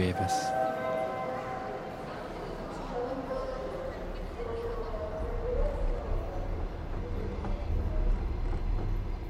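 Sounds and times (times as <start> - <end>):
speech: 0.0 - 0.9
faint voices: 0.0 - 9.2
rumble and rattle inside a moving overnight train carriage: 1.9 - 9.2.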